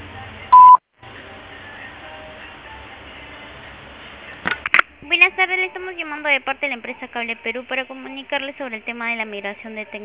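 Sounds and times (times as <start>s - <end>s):
voicemail beep before message recording: 0.5s - 0.8s
speech: 5.1s - 10.0s.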